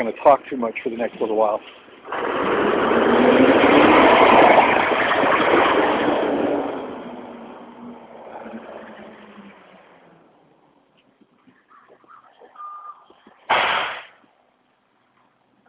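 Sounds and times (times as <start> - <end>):
speech: 0.0 - 3.5
garbage truck engine roaring in the woods of Maine: 1.8 - 10.6
short sharp burst of noise: 13.5 - 14.2.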